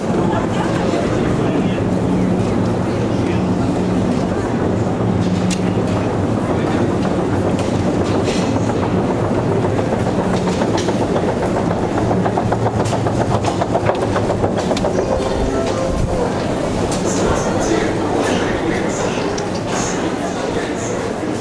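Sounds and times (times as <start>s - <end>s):
Russian metro train rumbling along rails: 0.0s - 21.4s
metro train wheels clattering on rails: 5.1s - 21.4s.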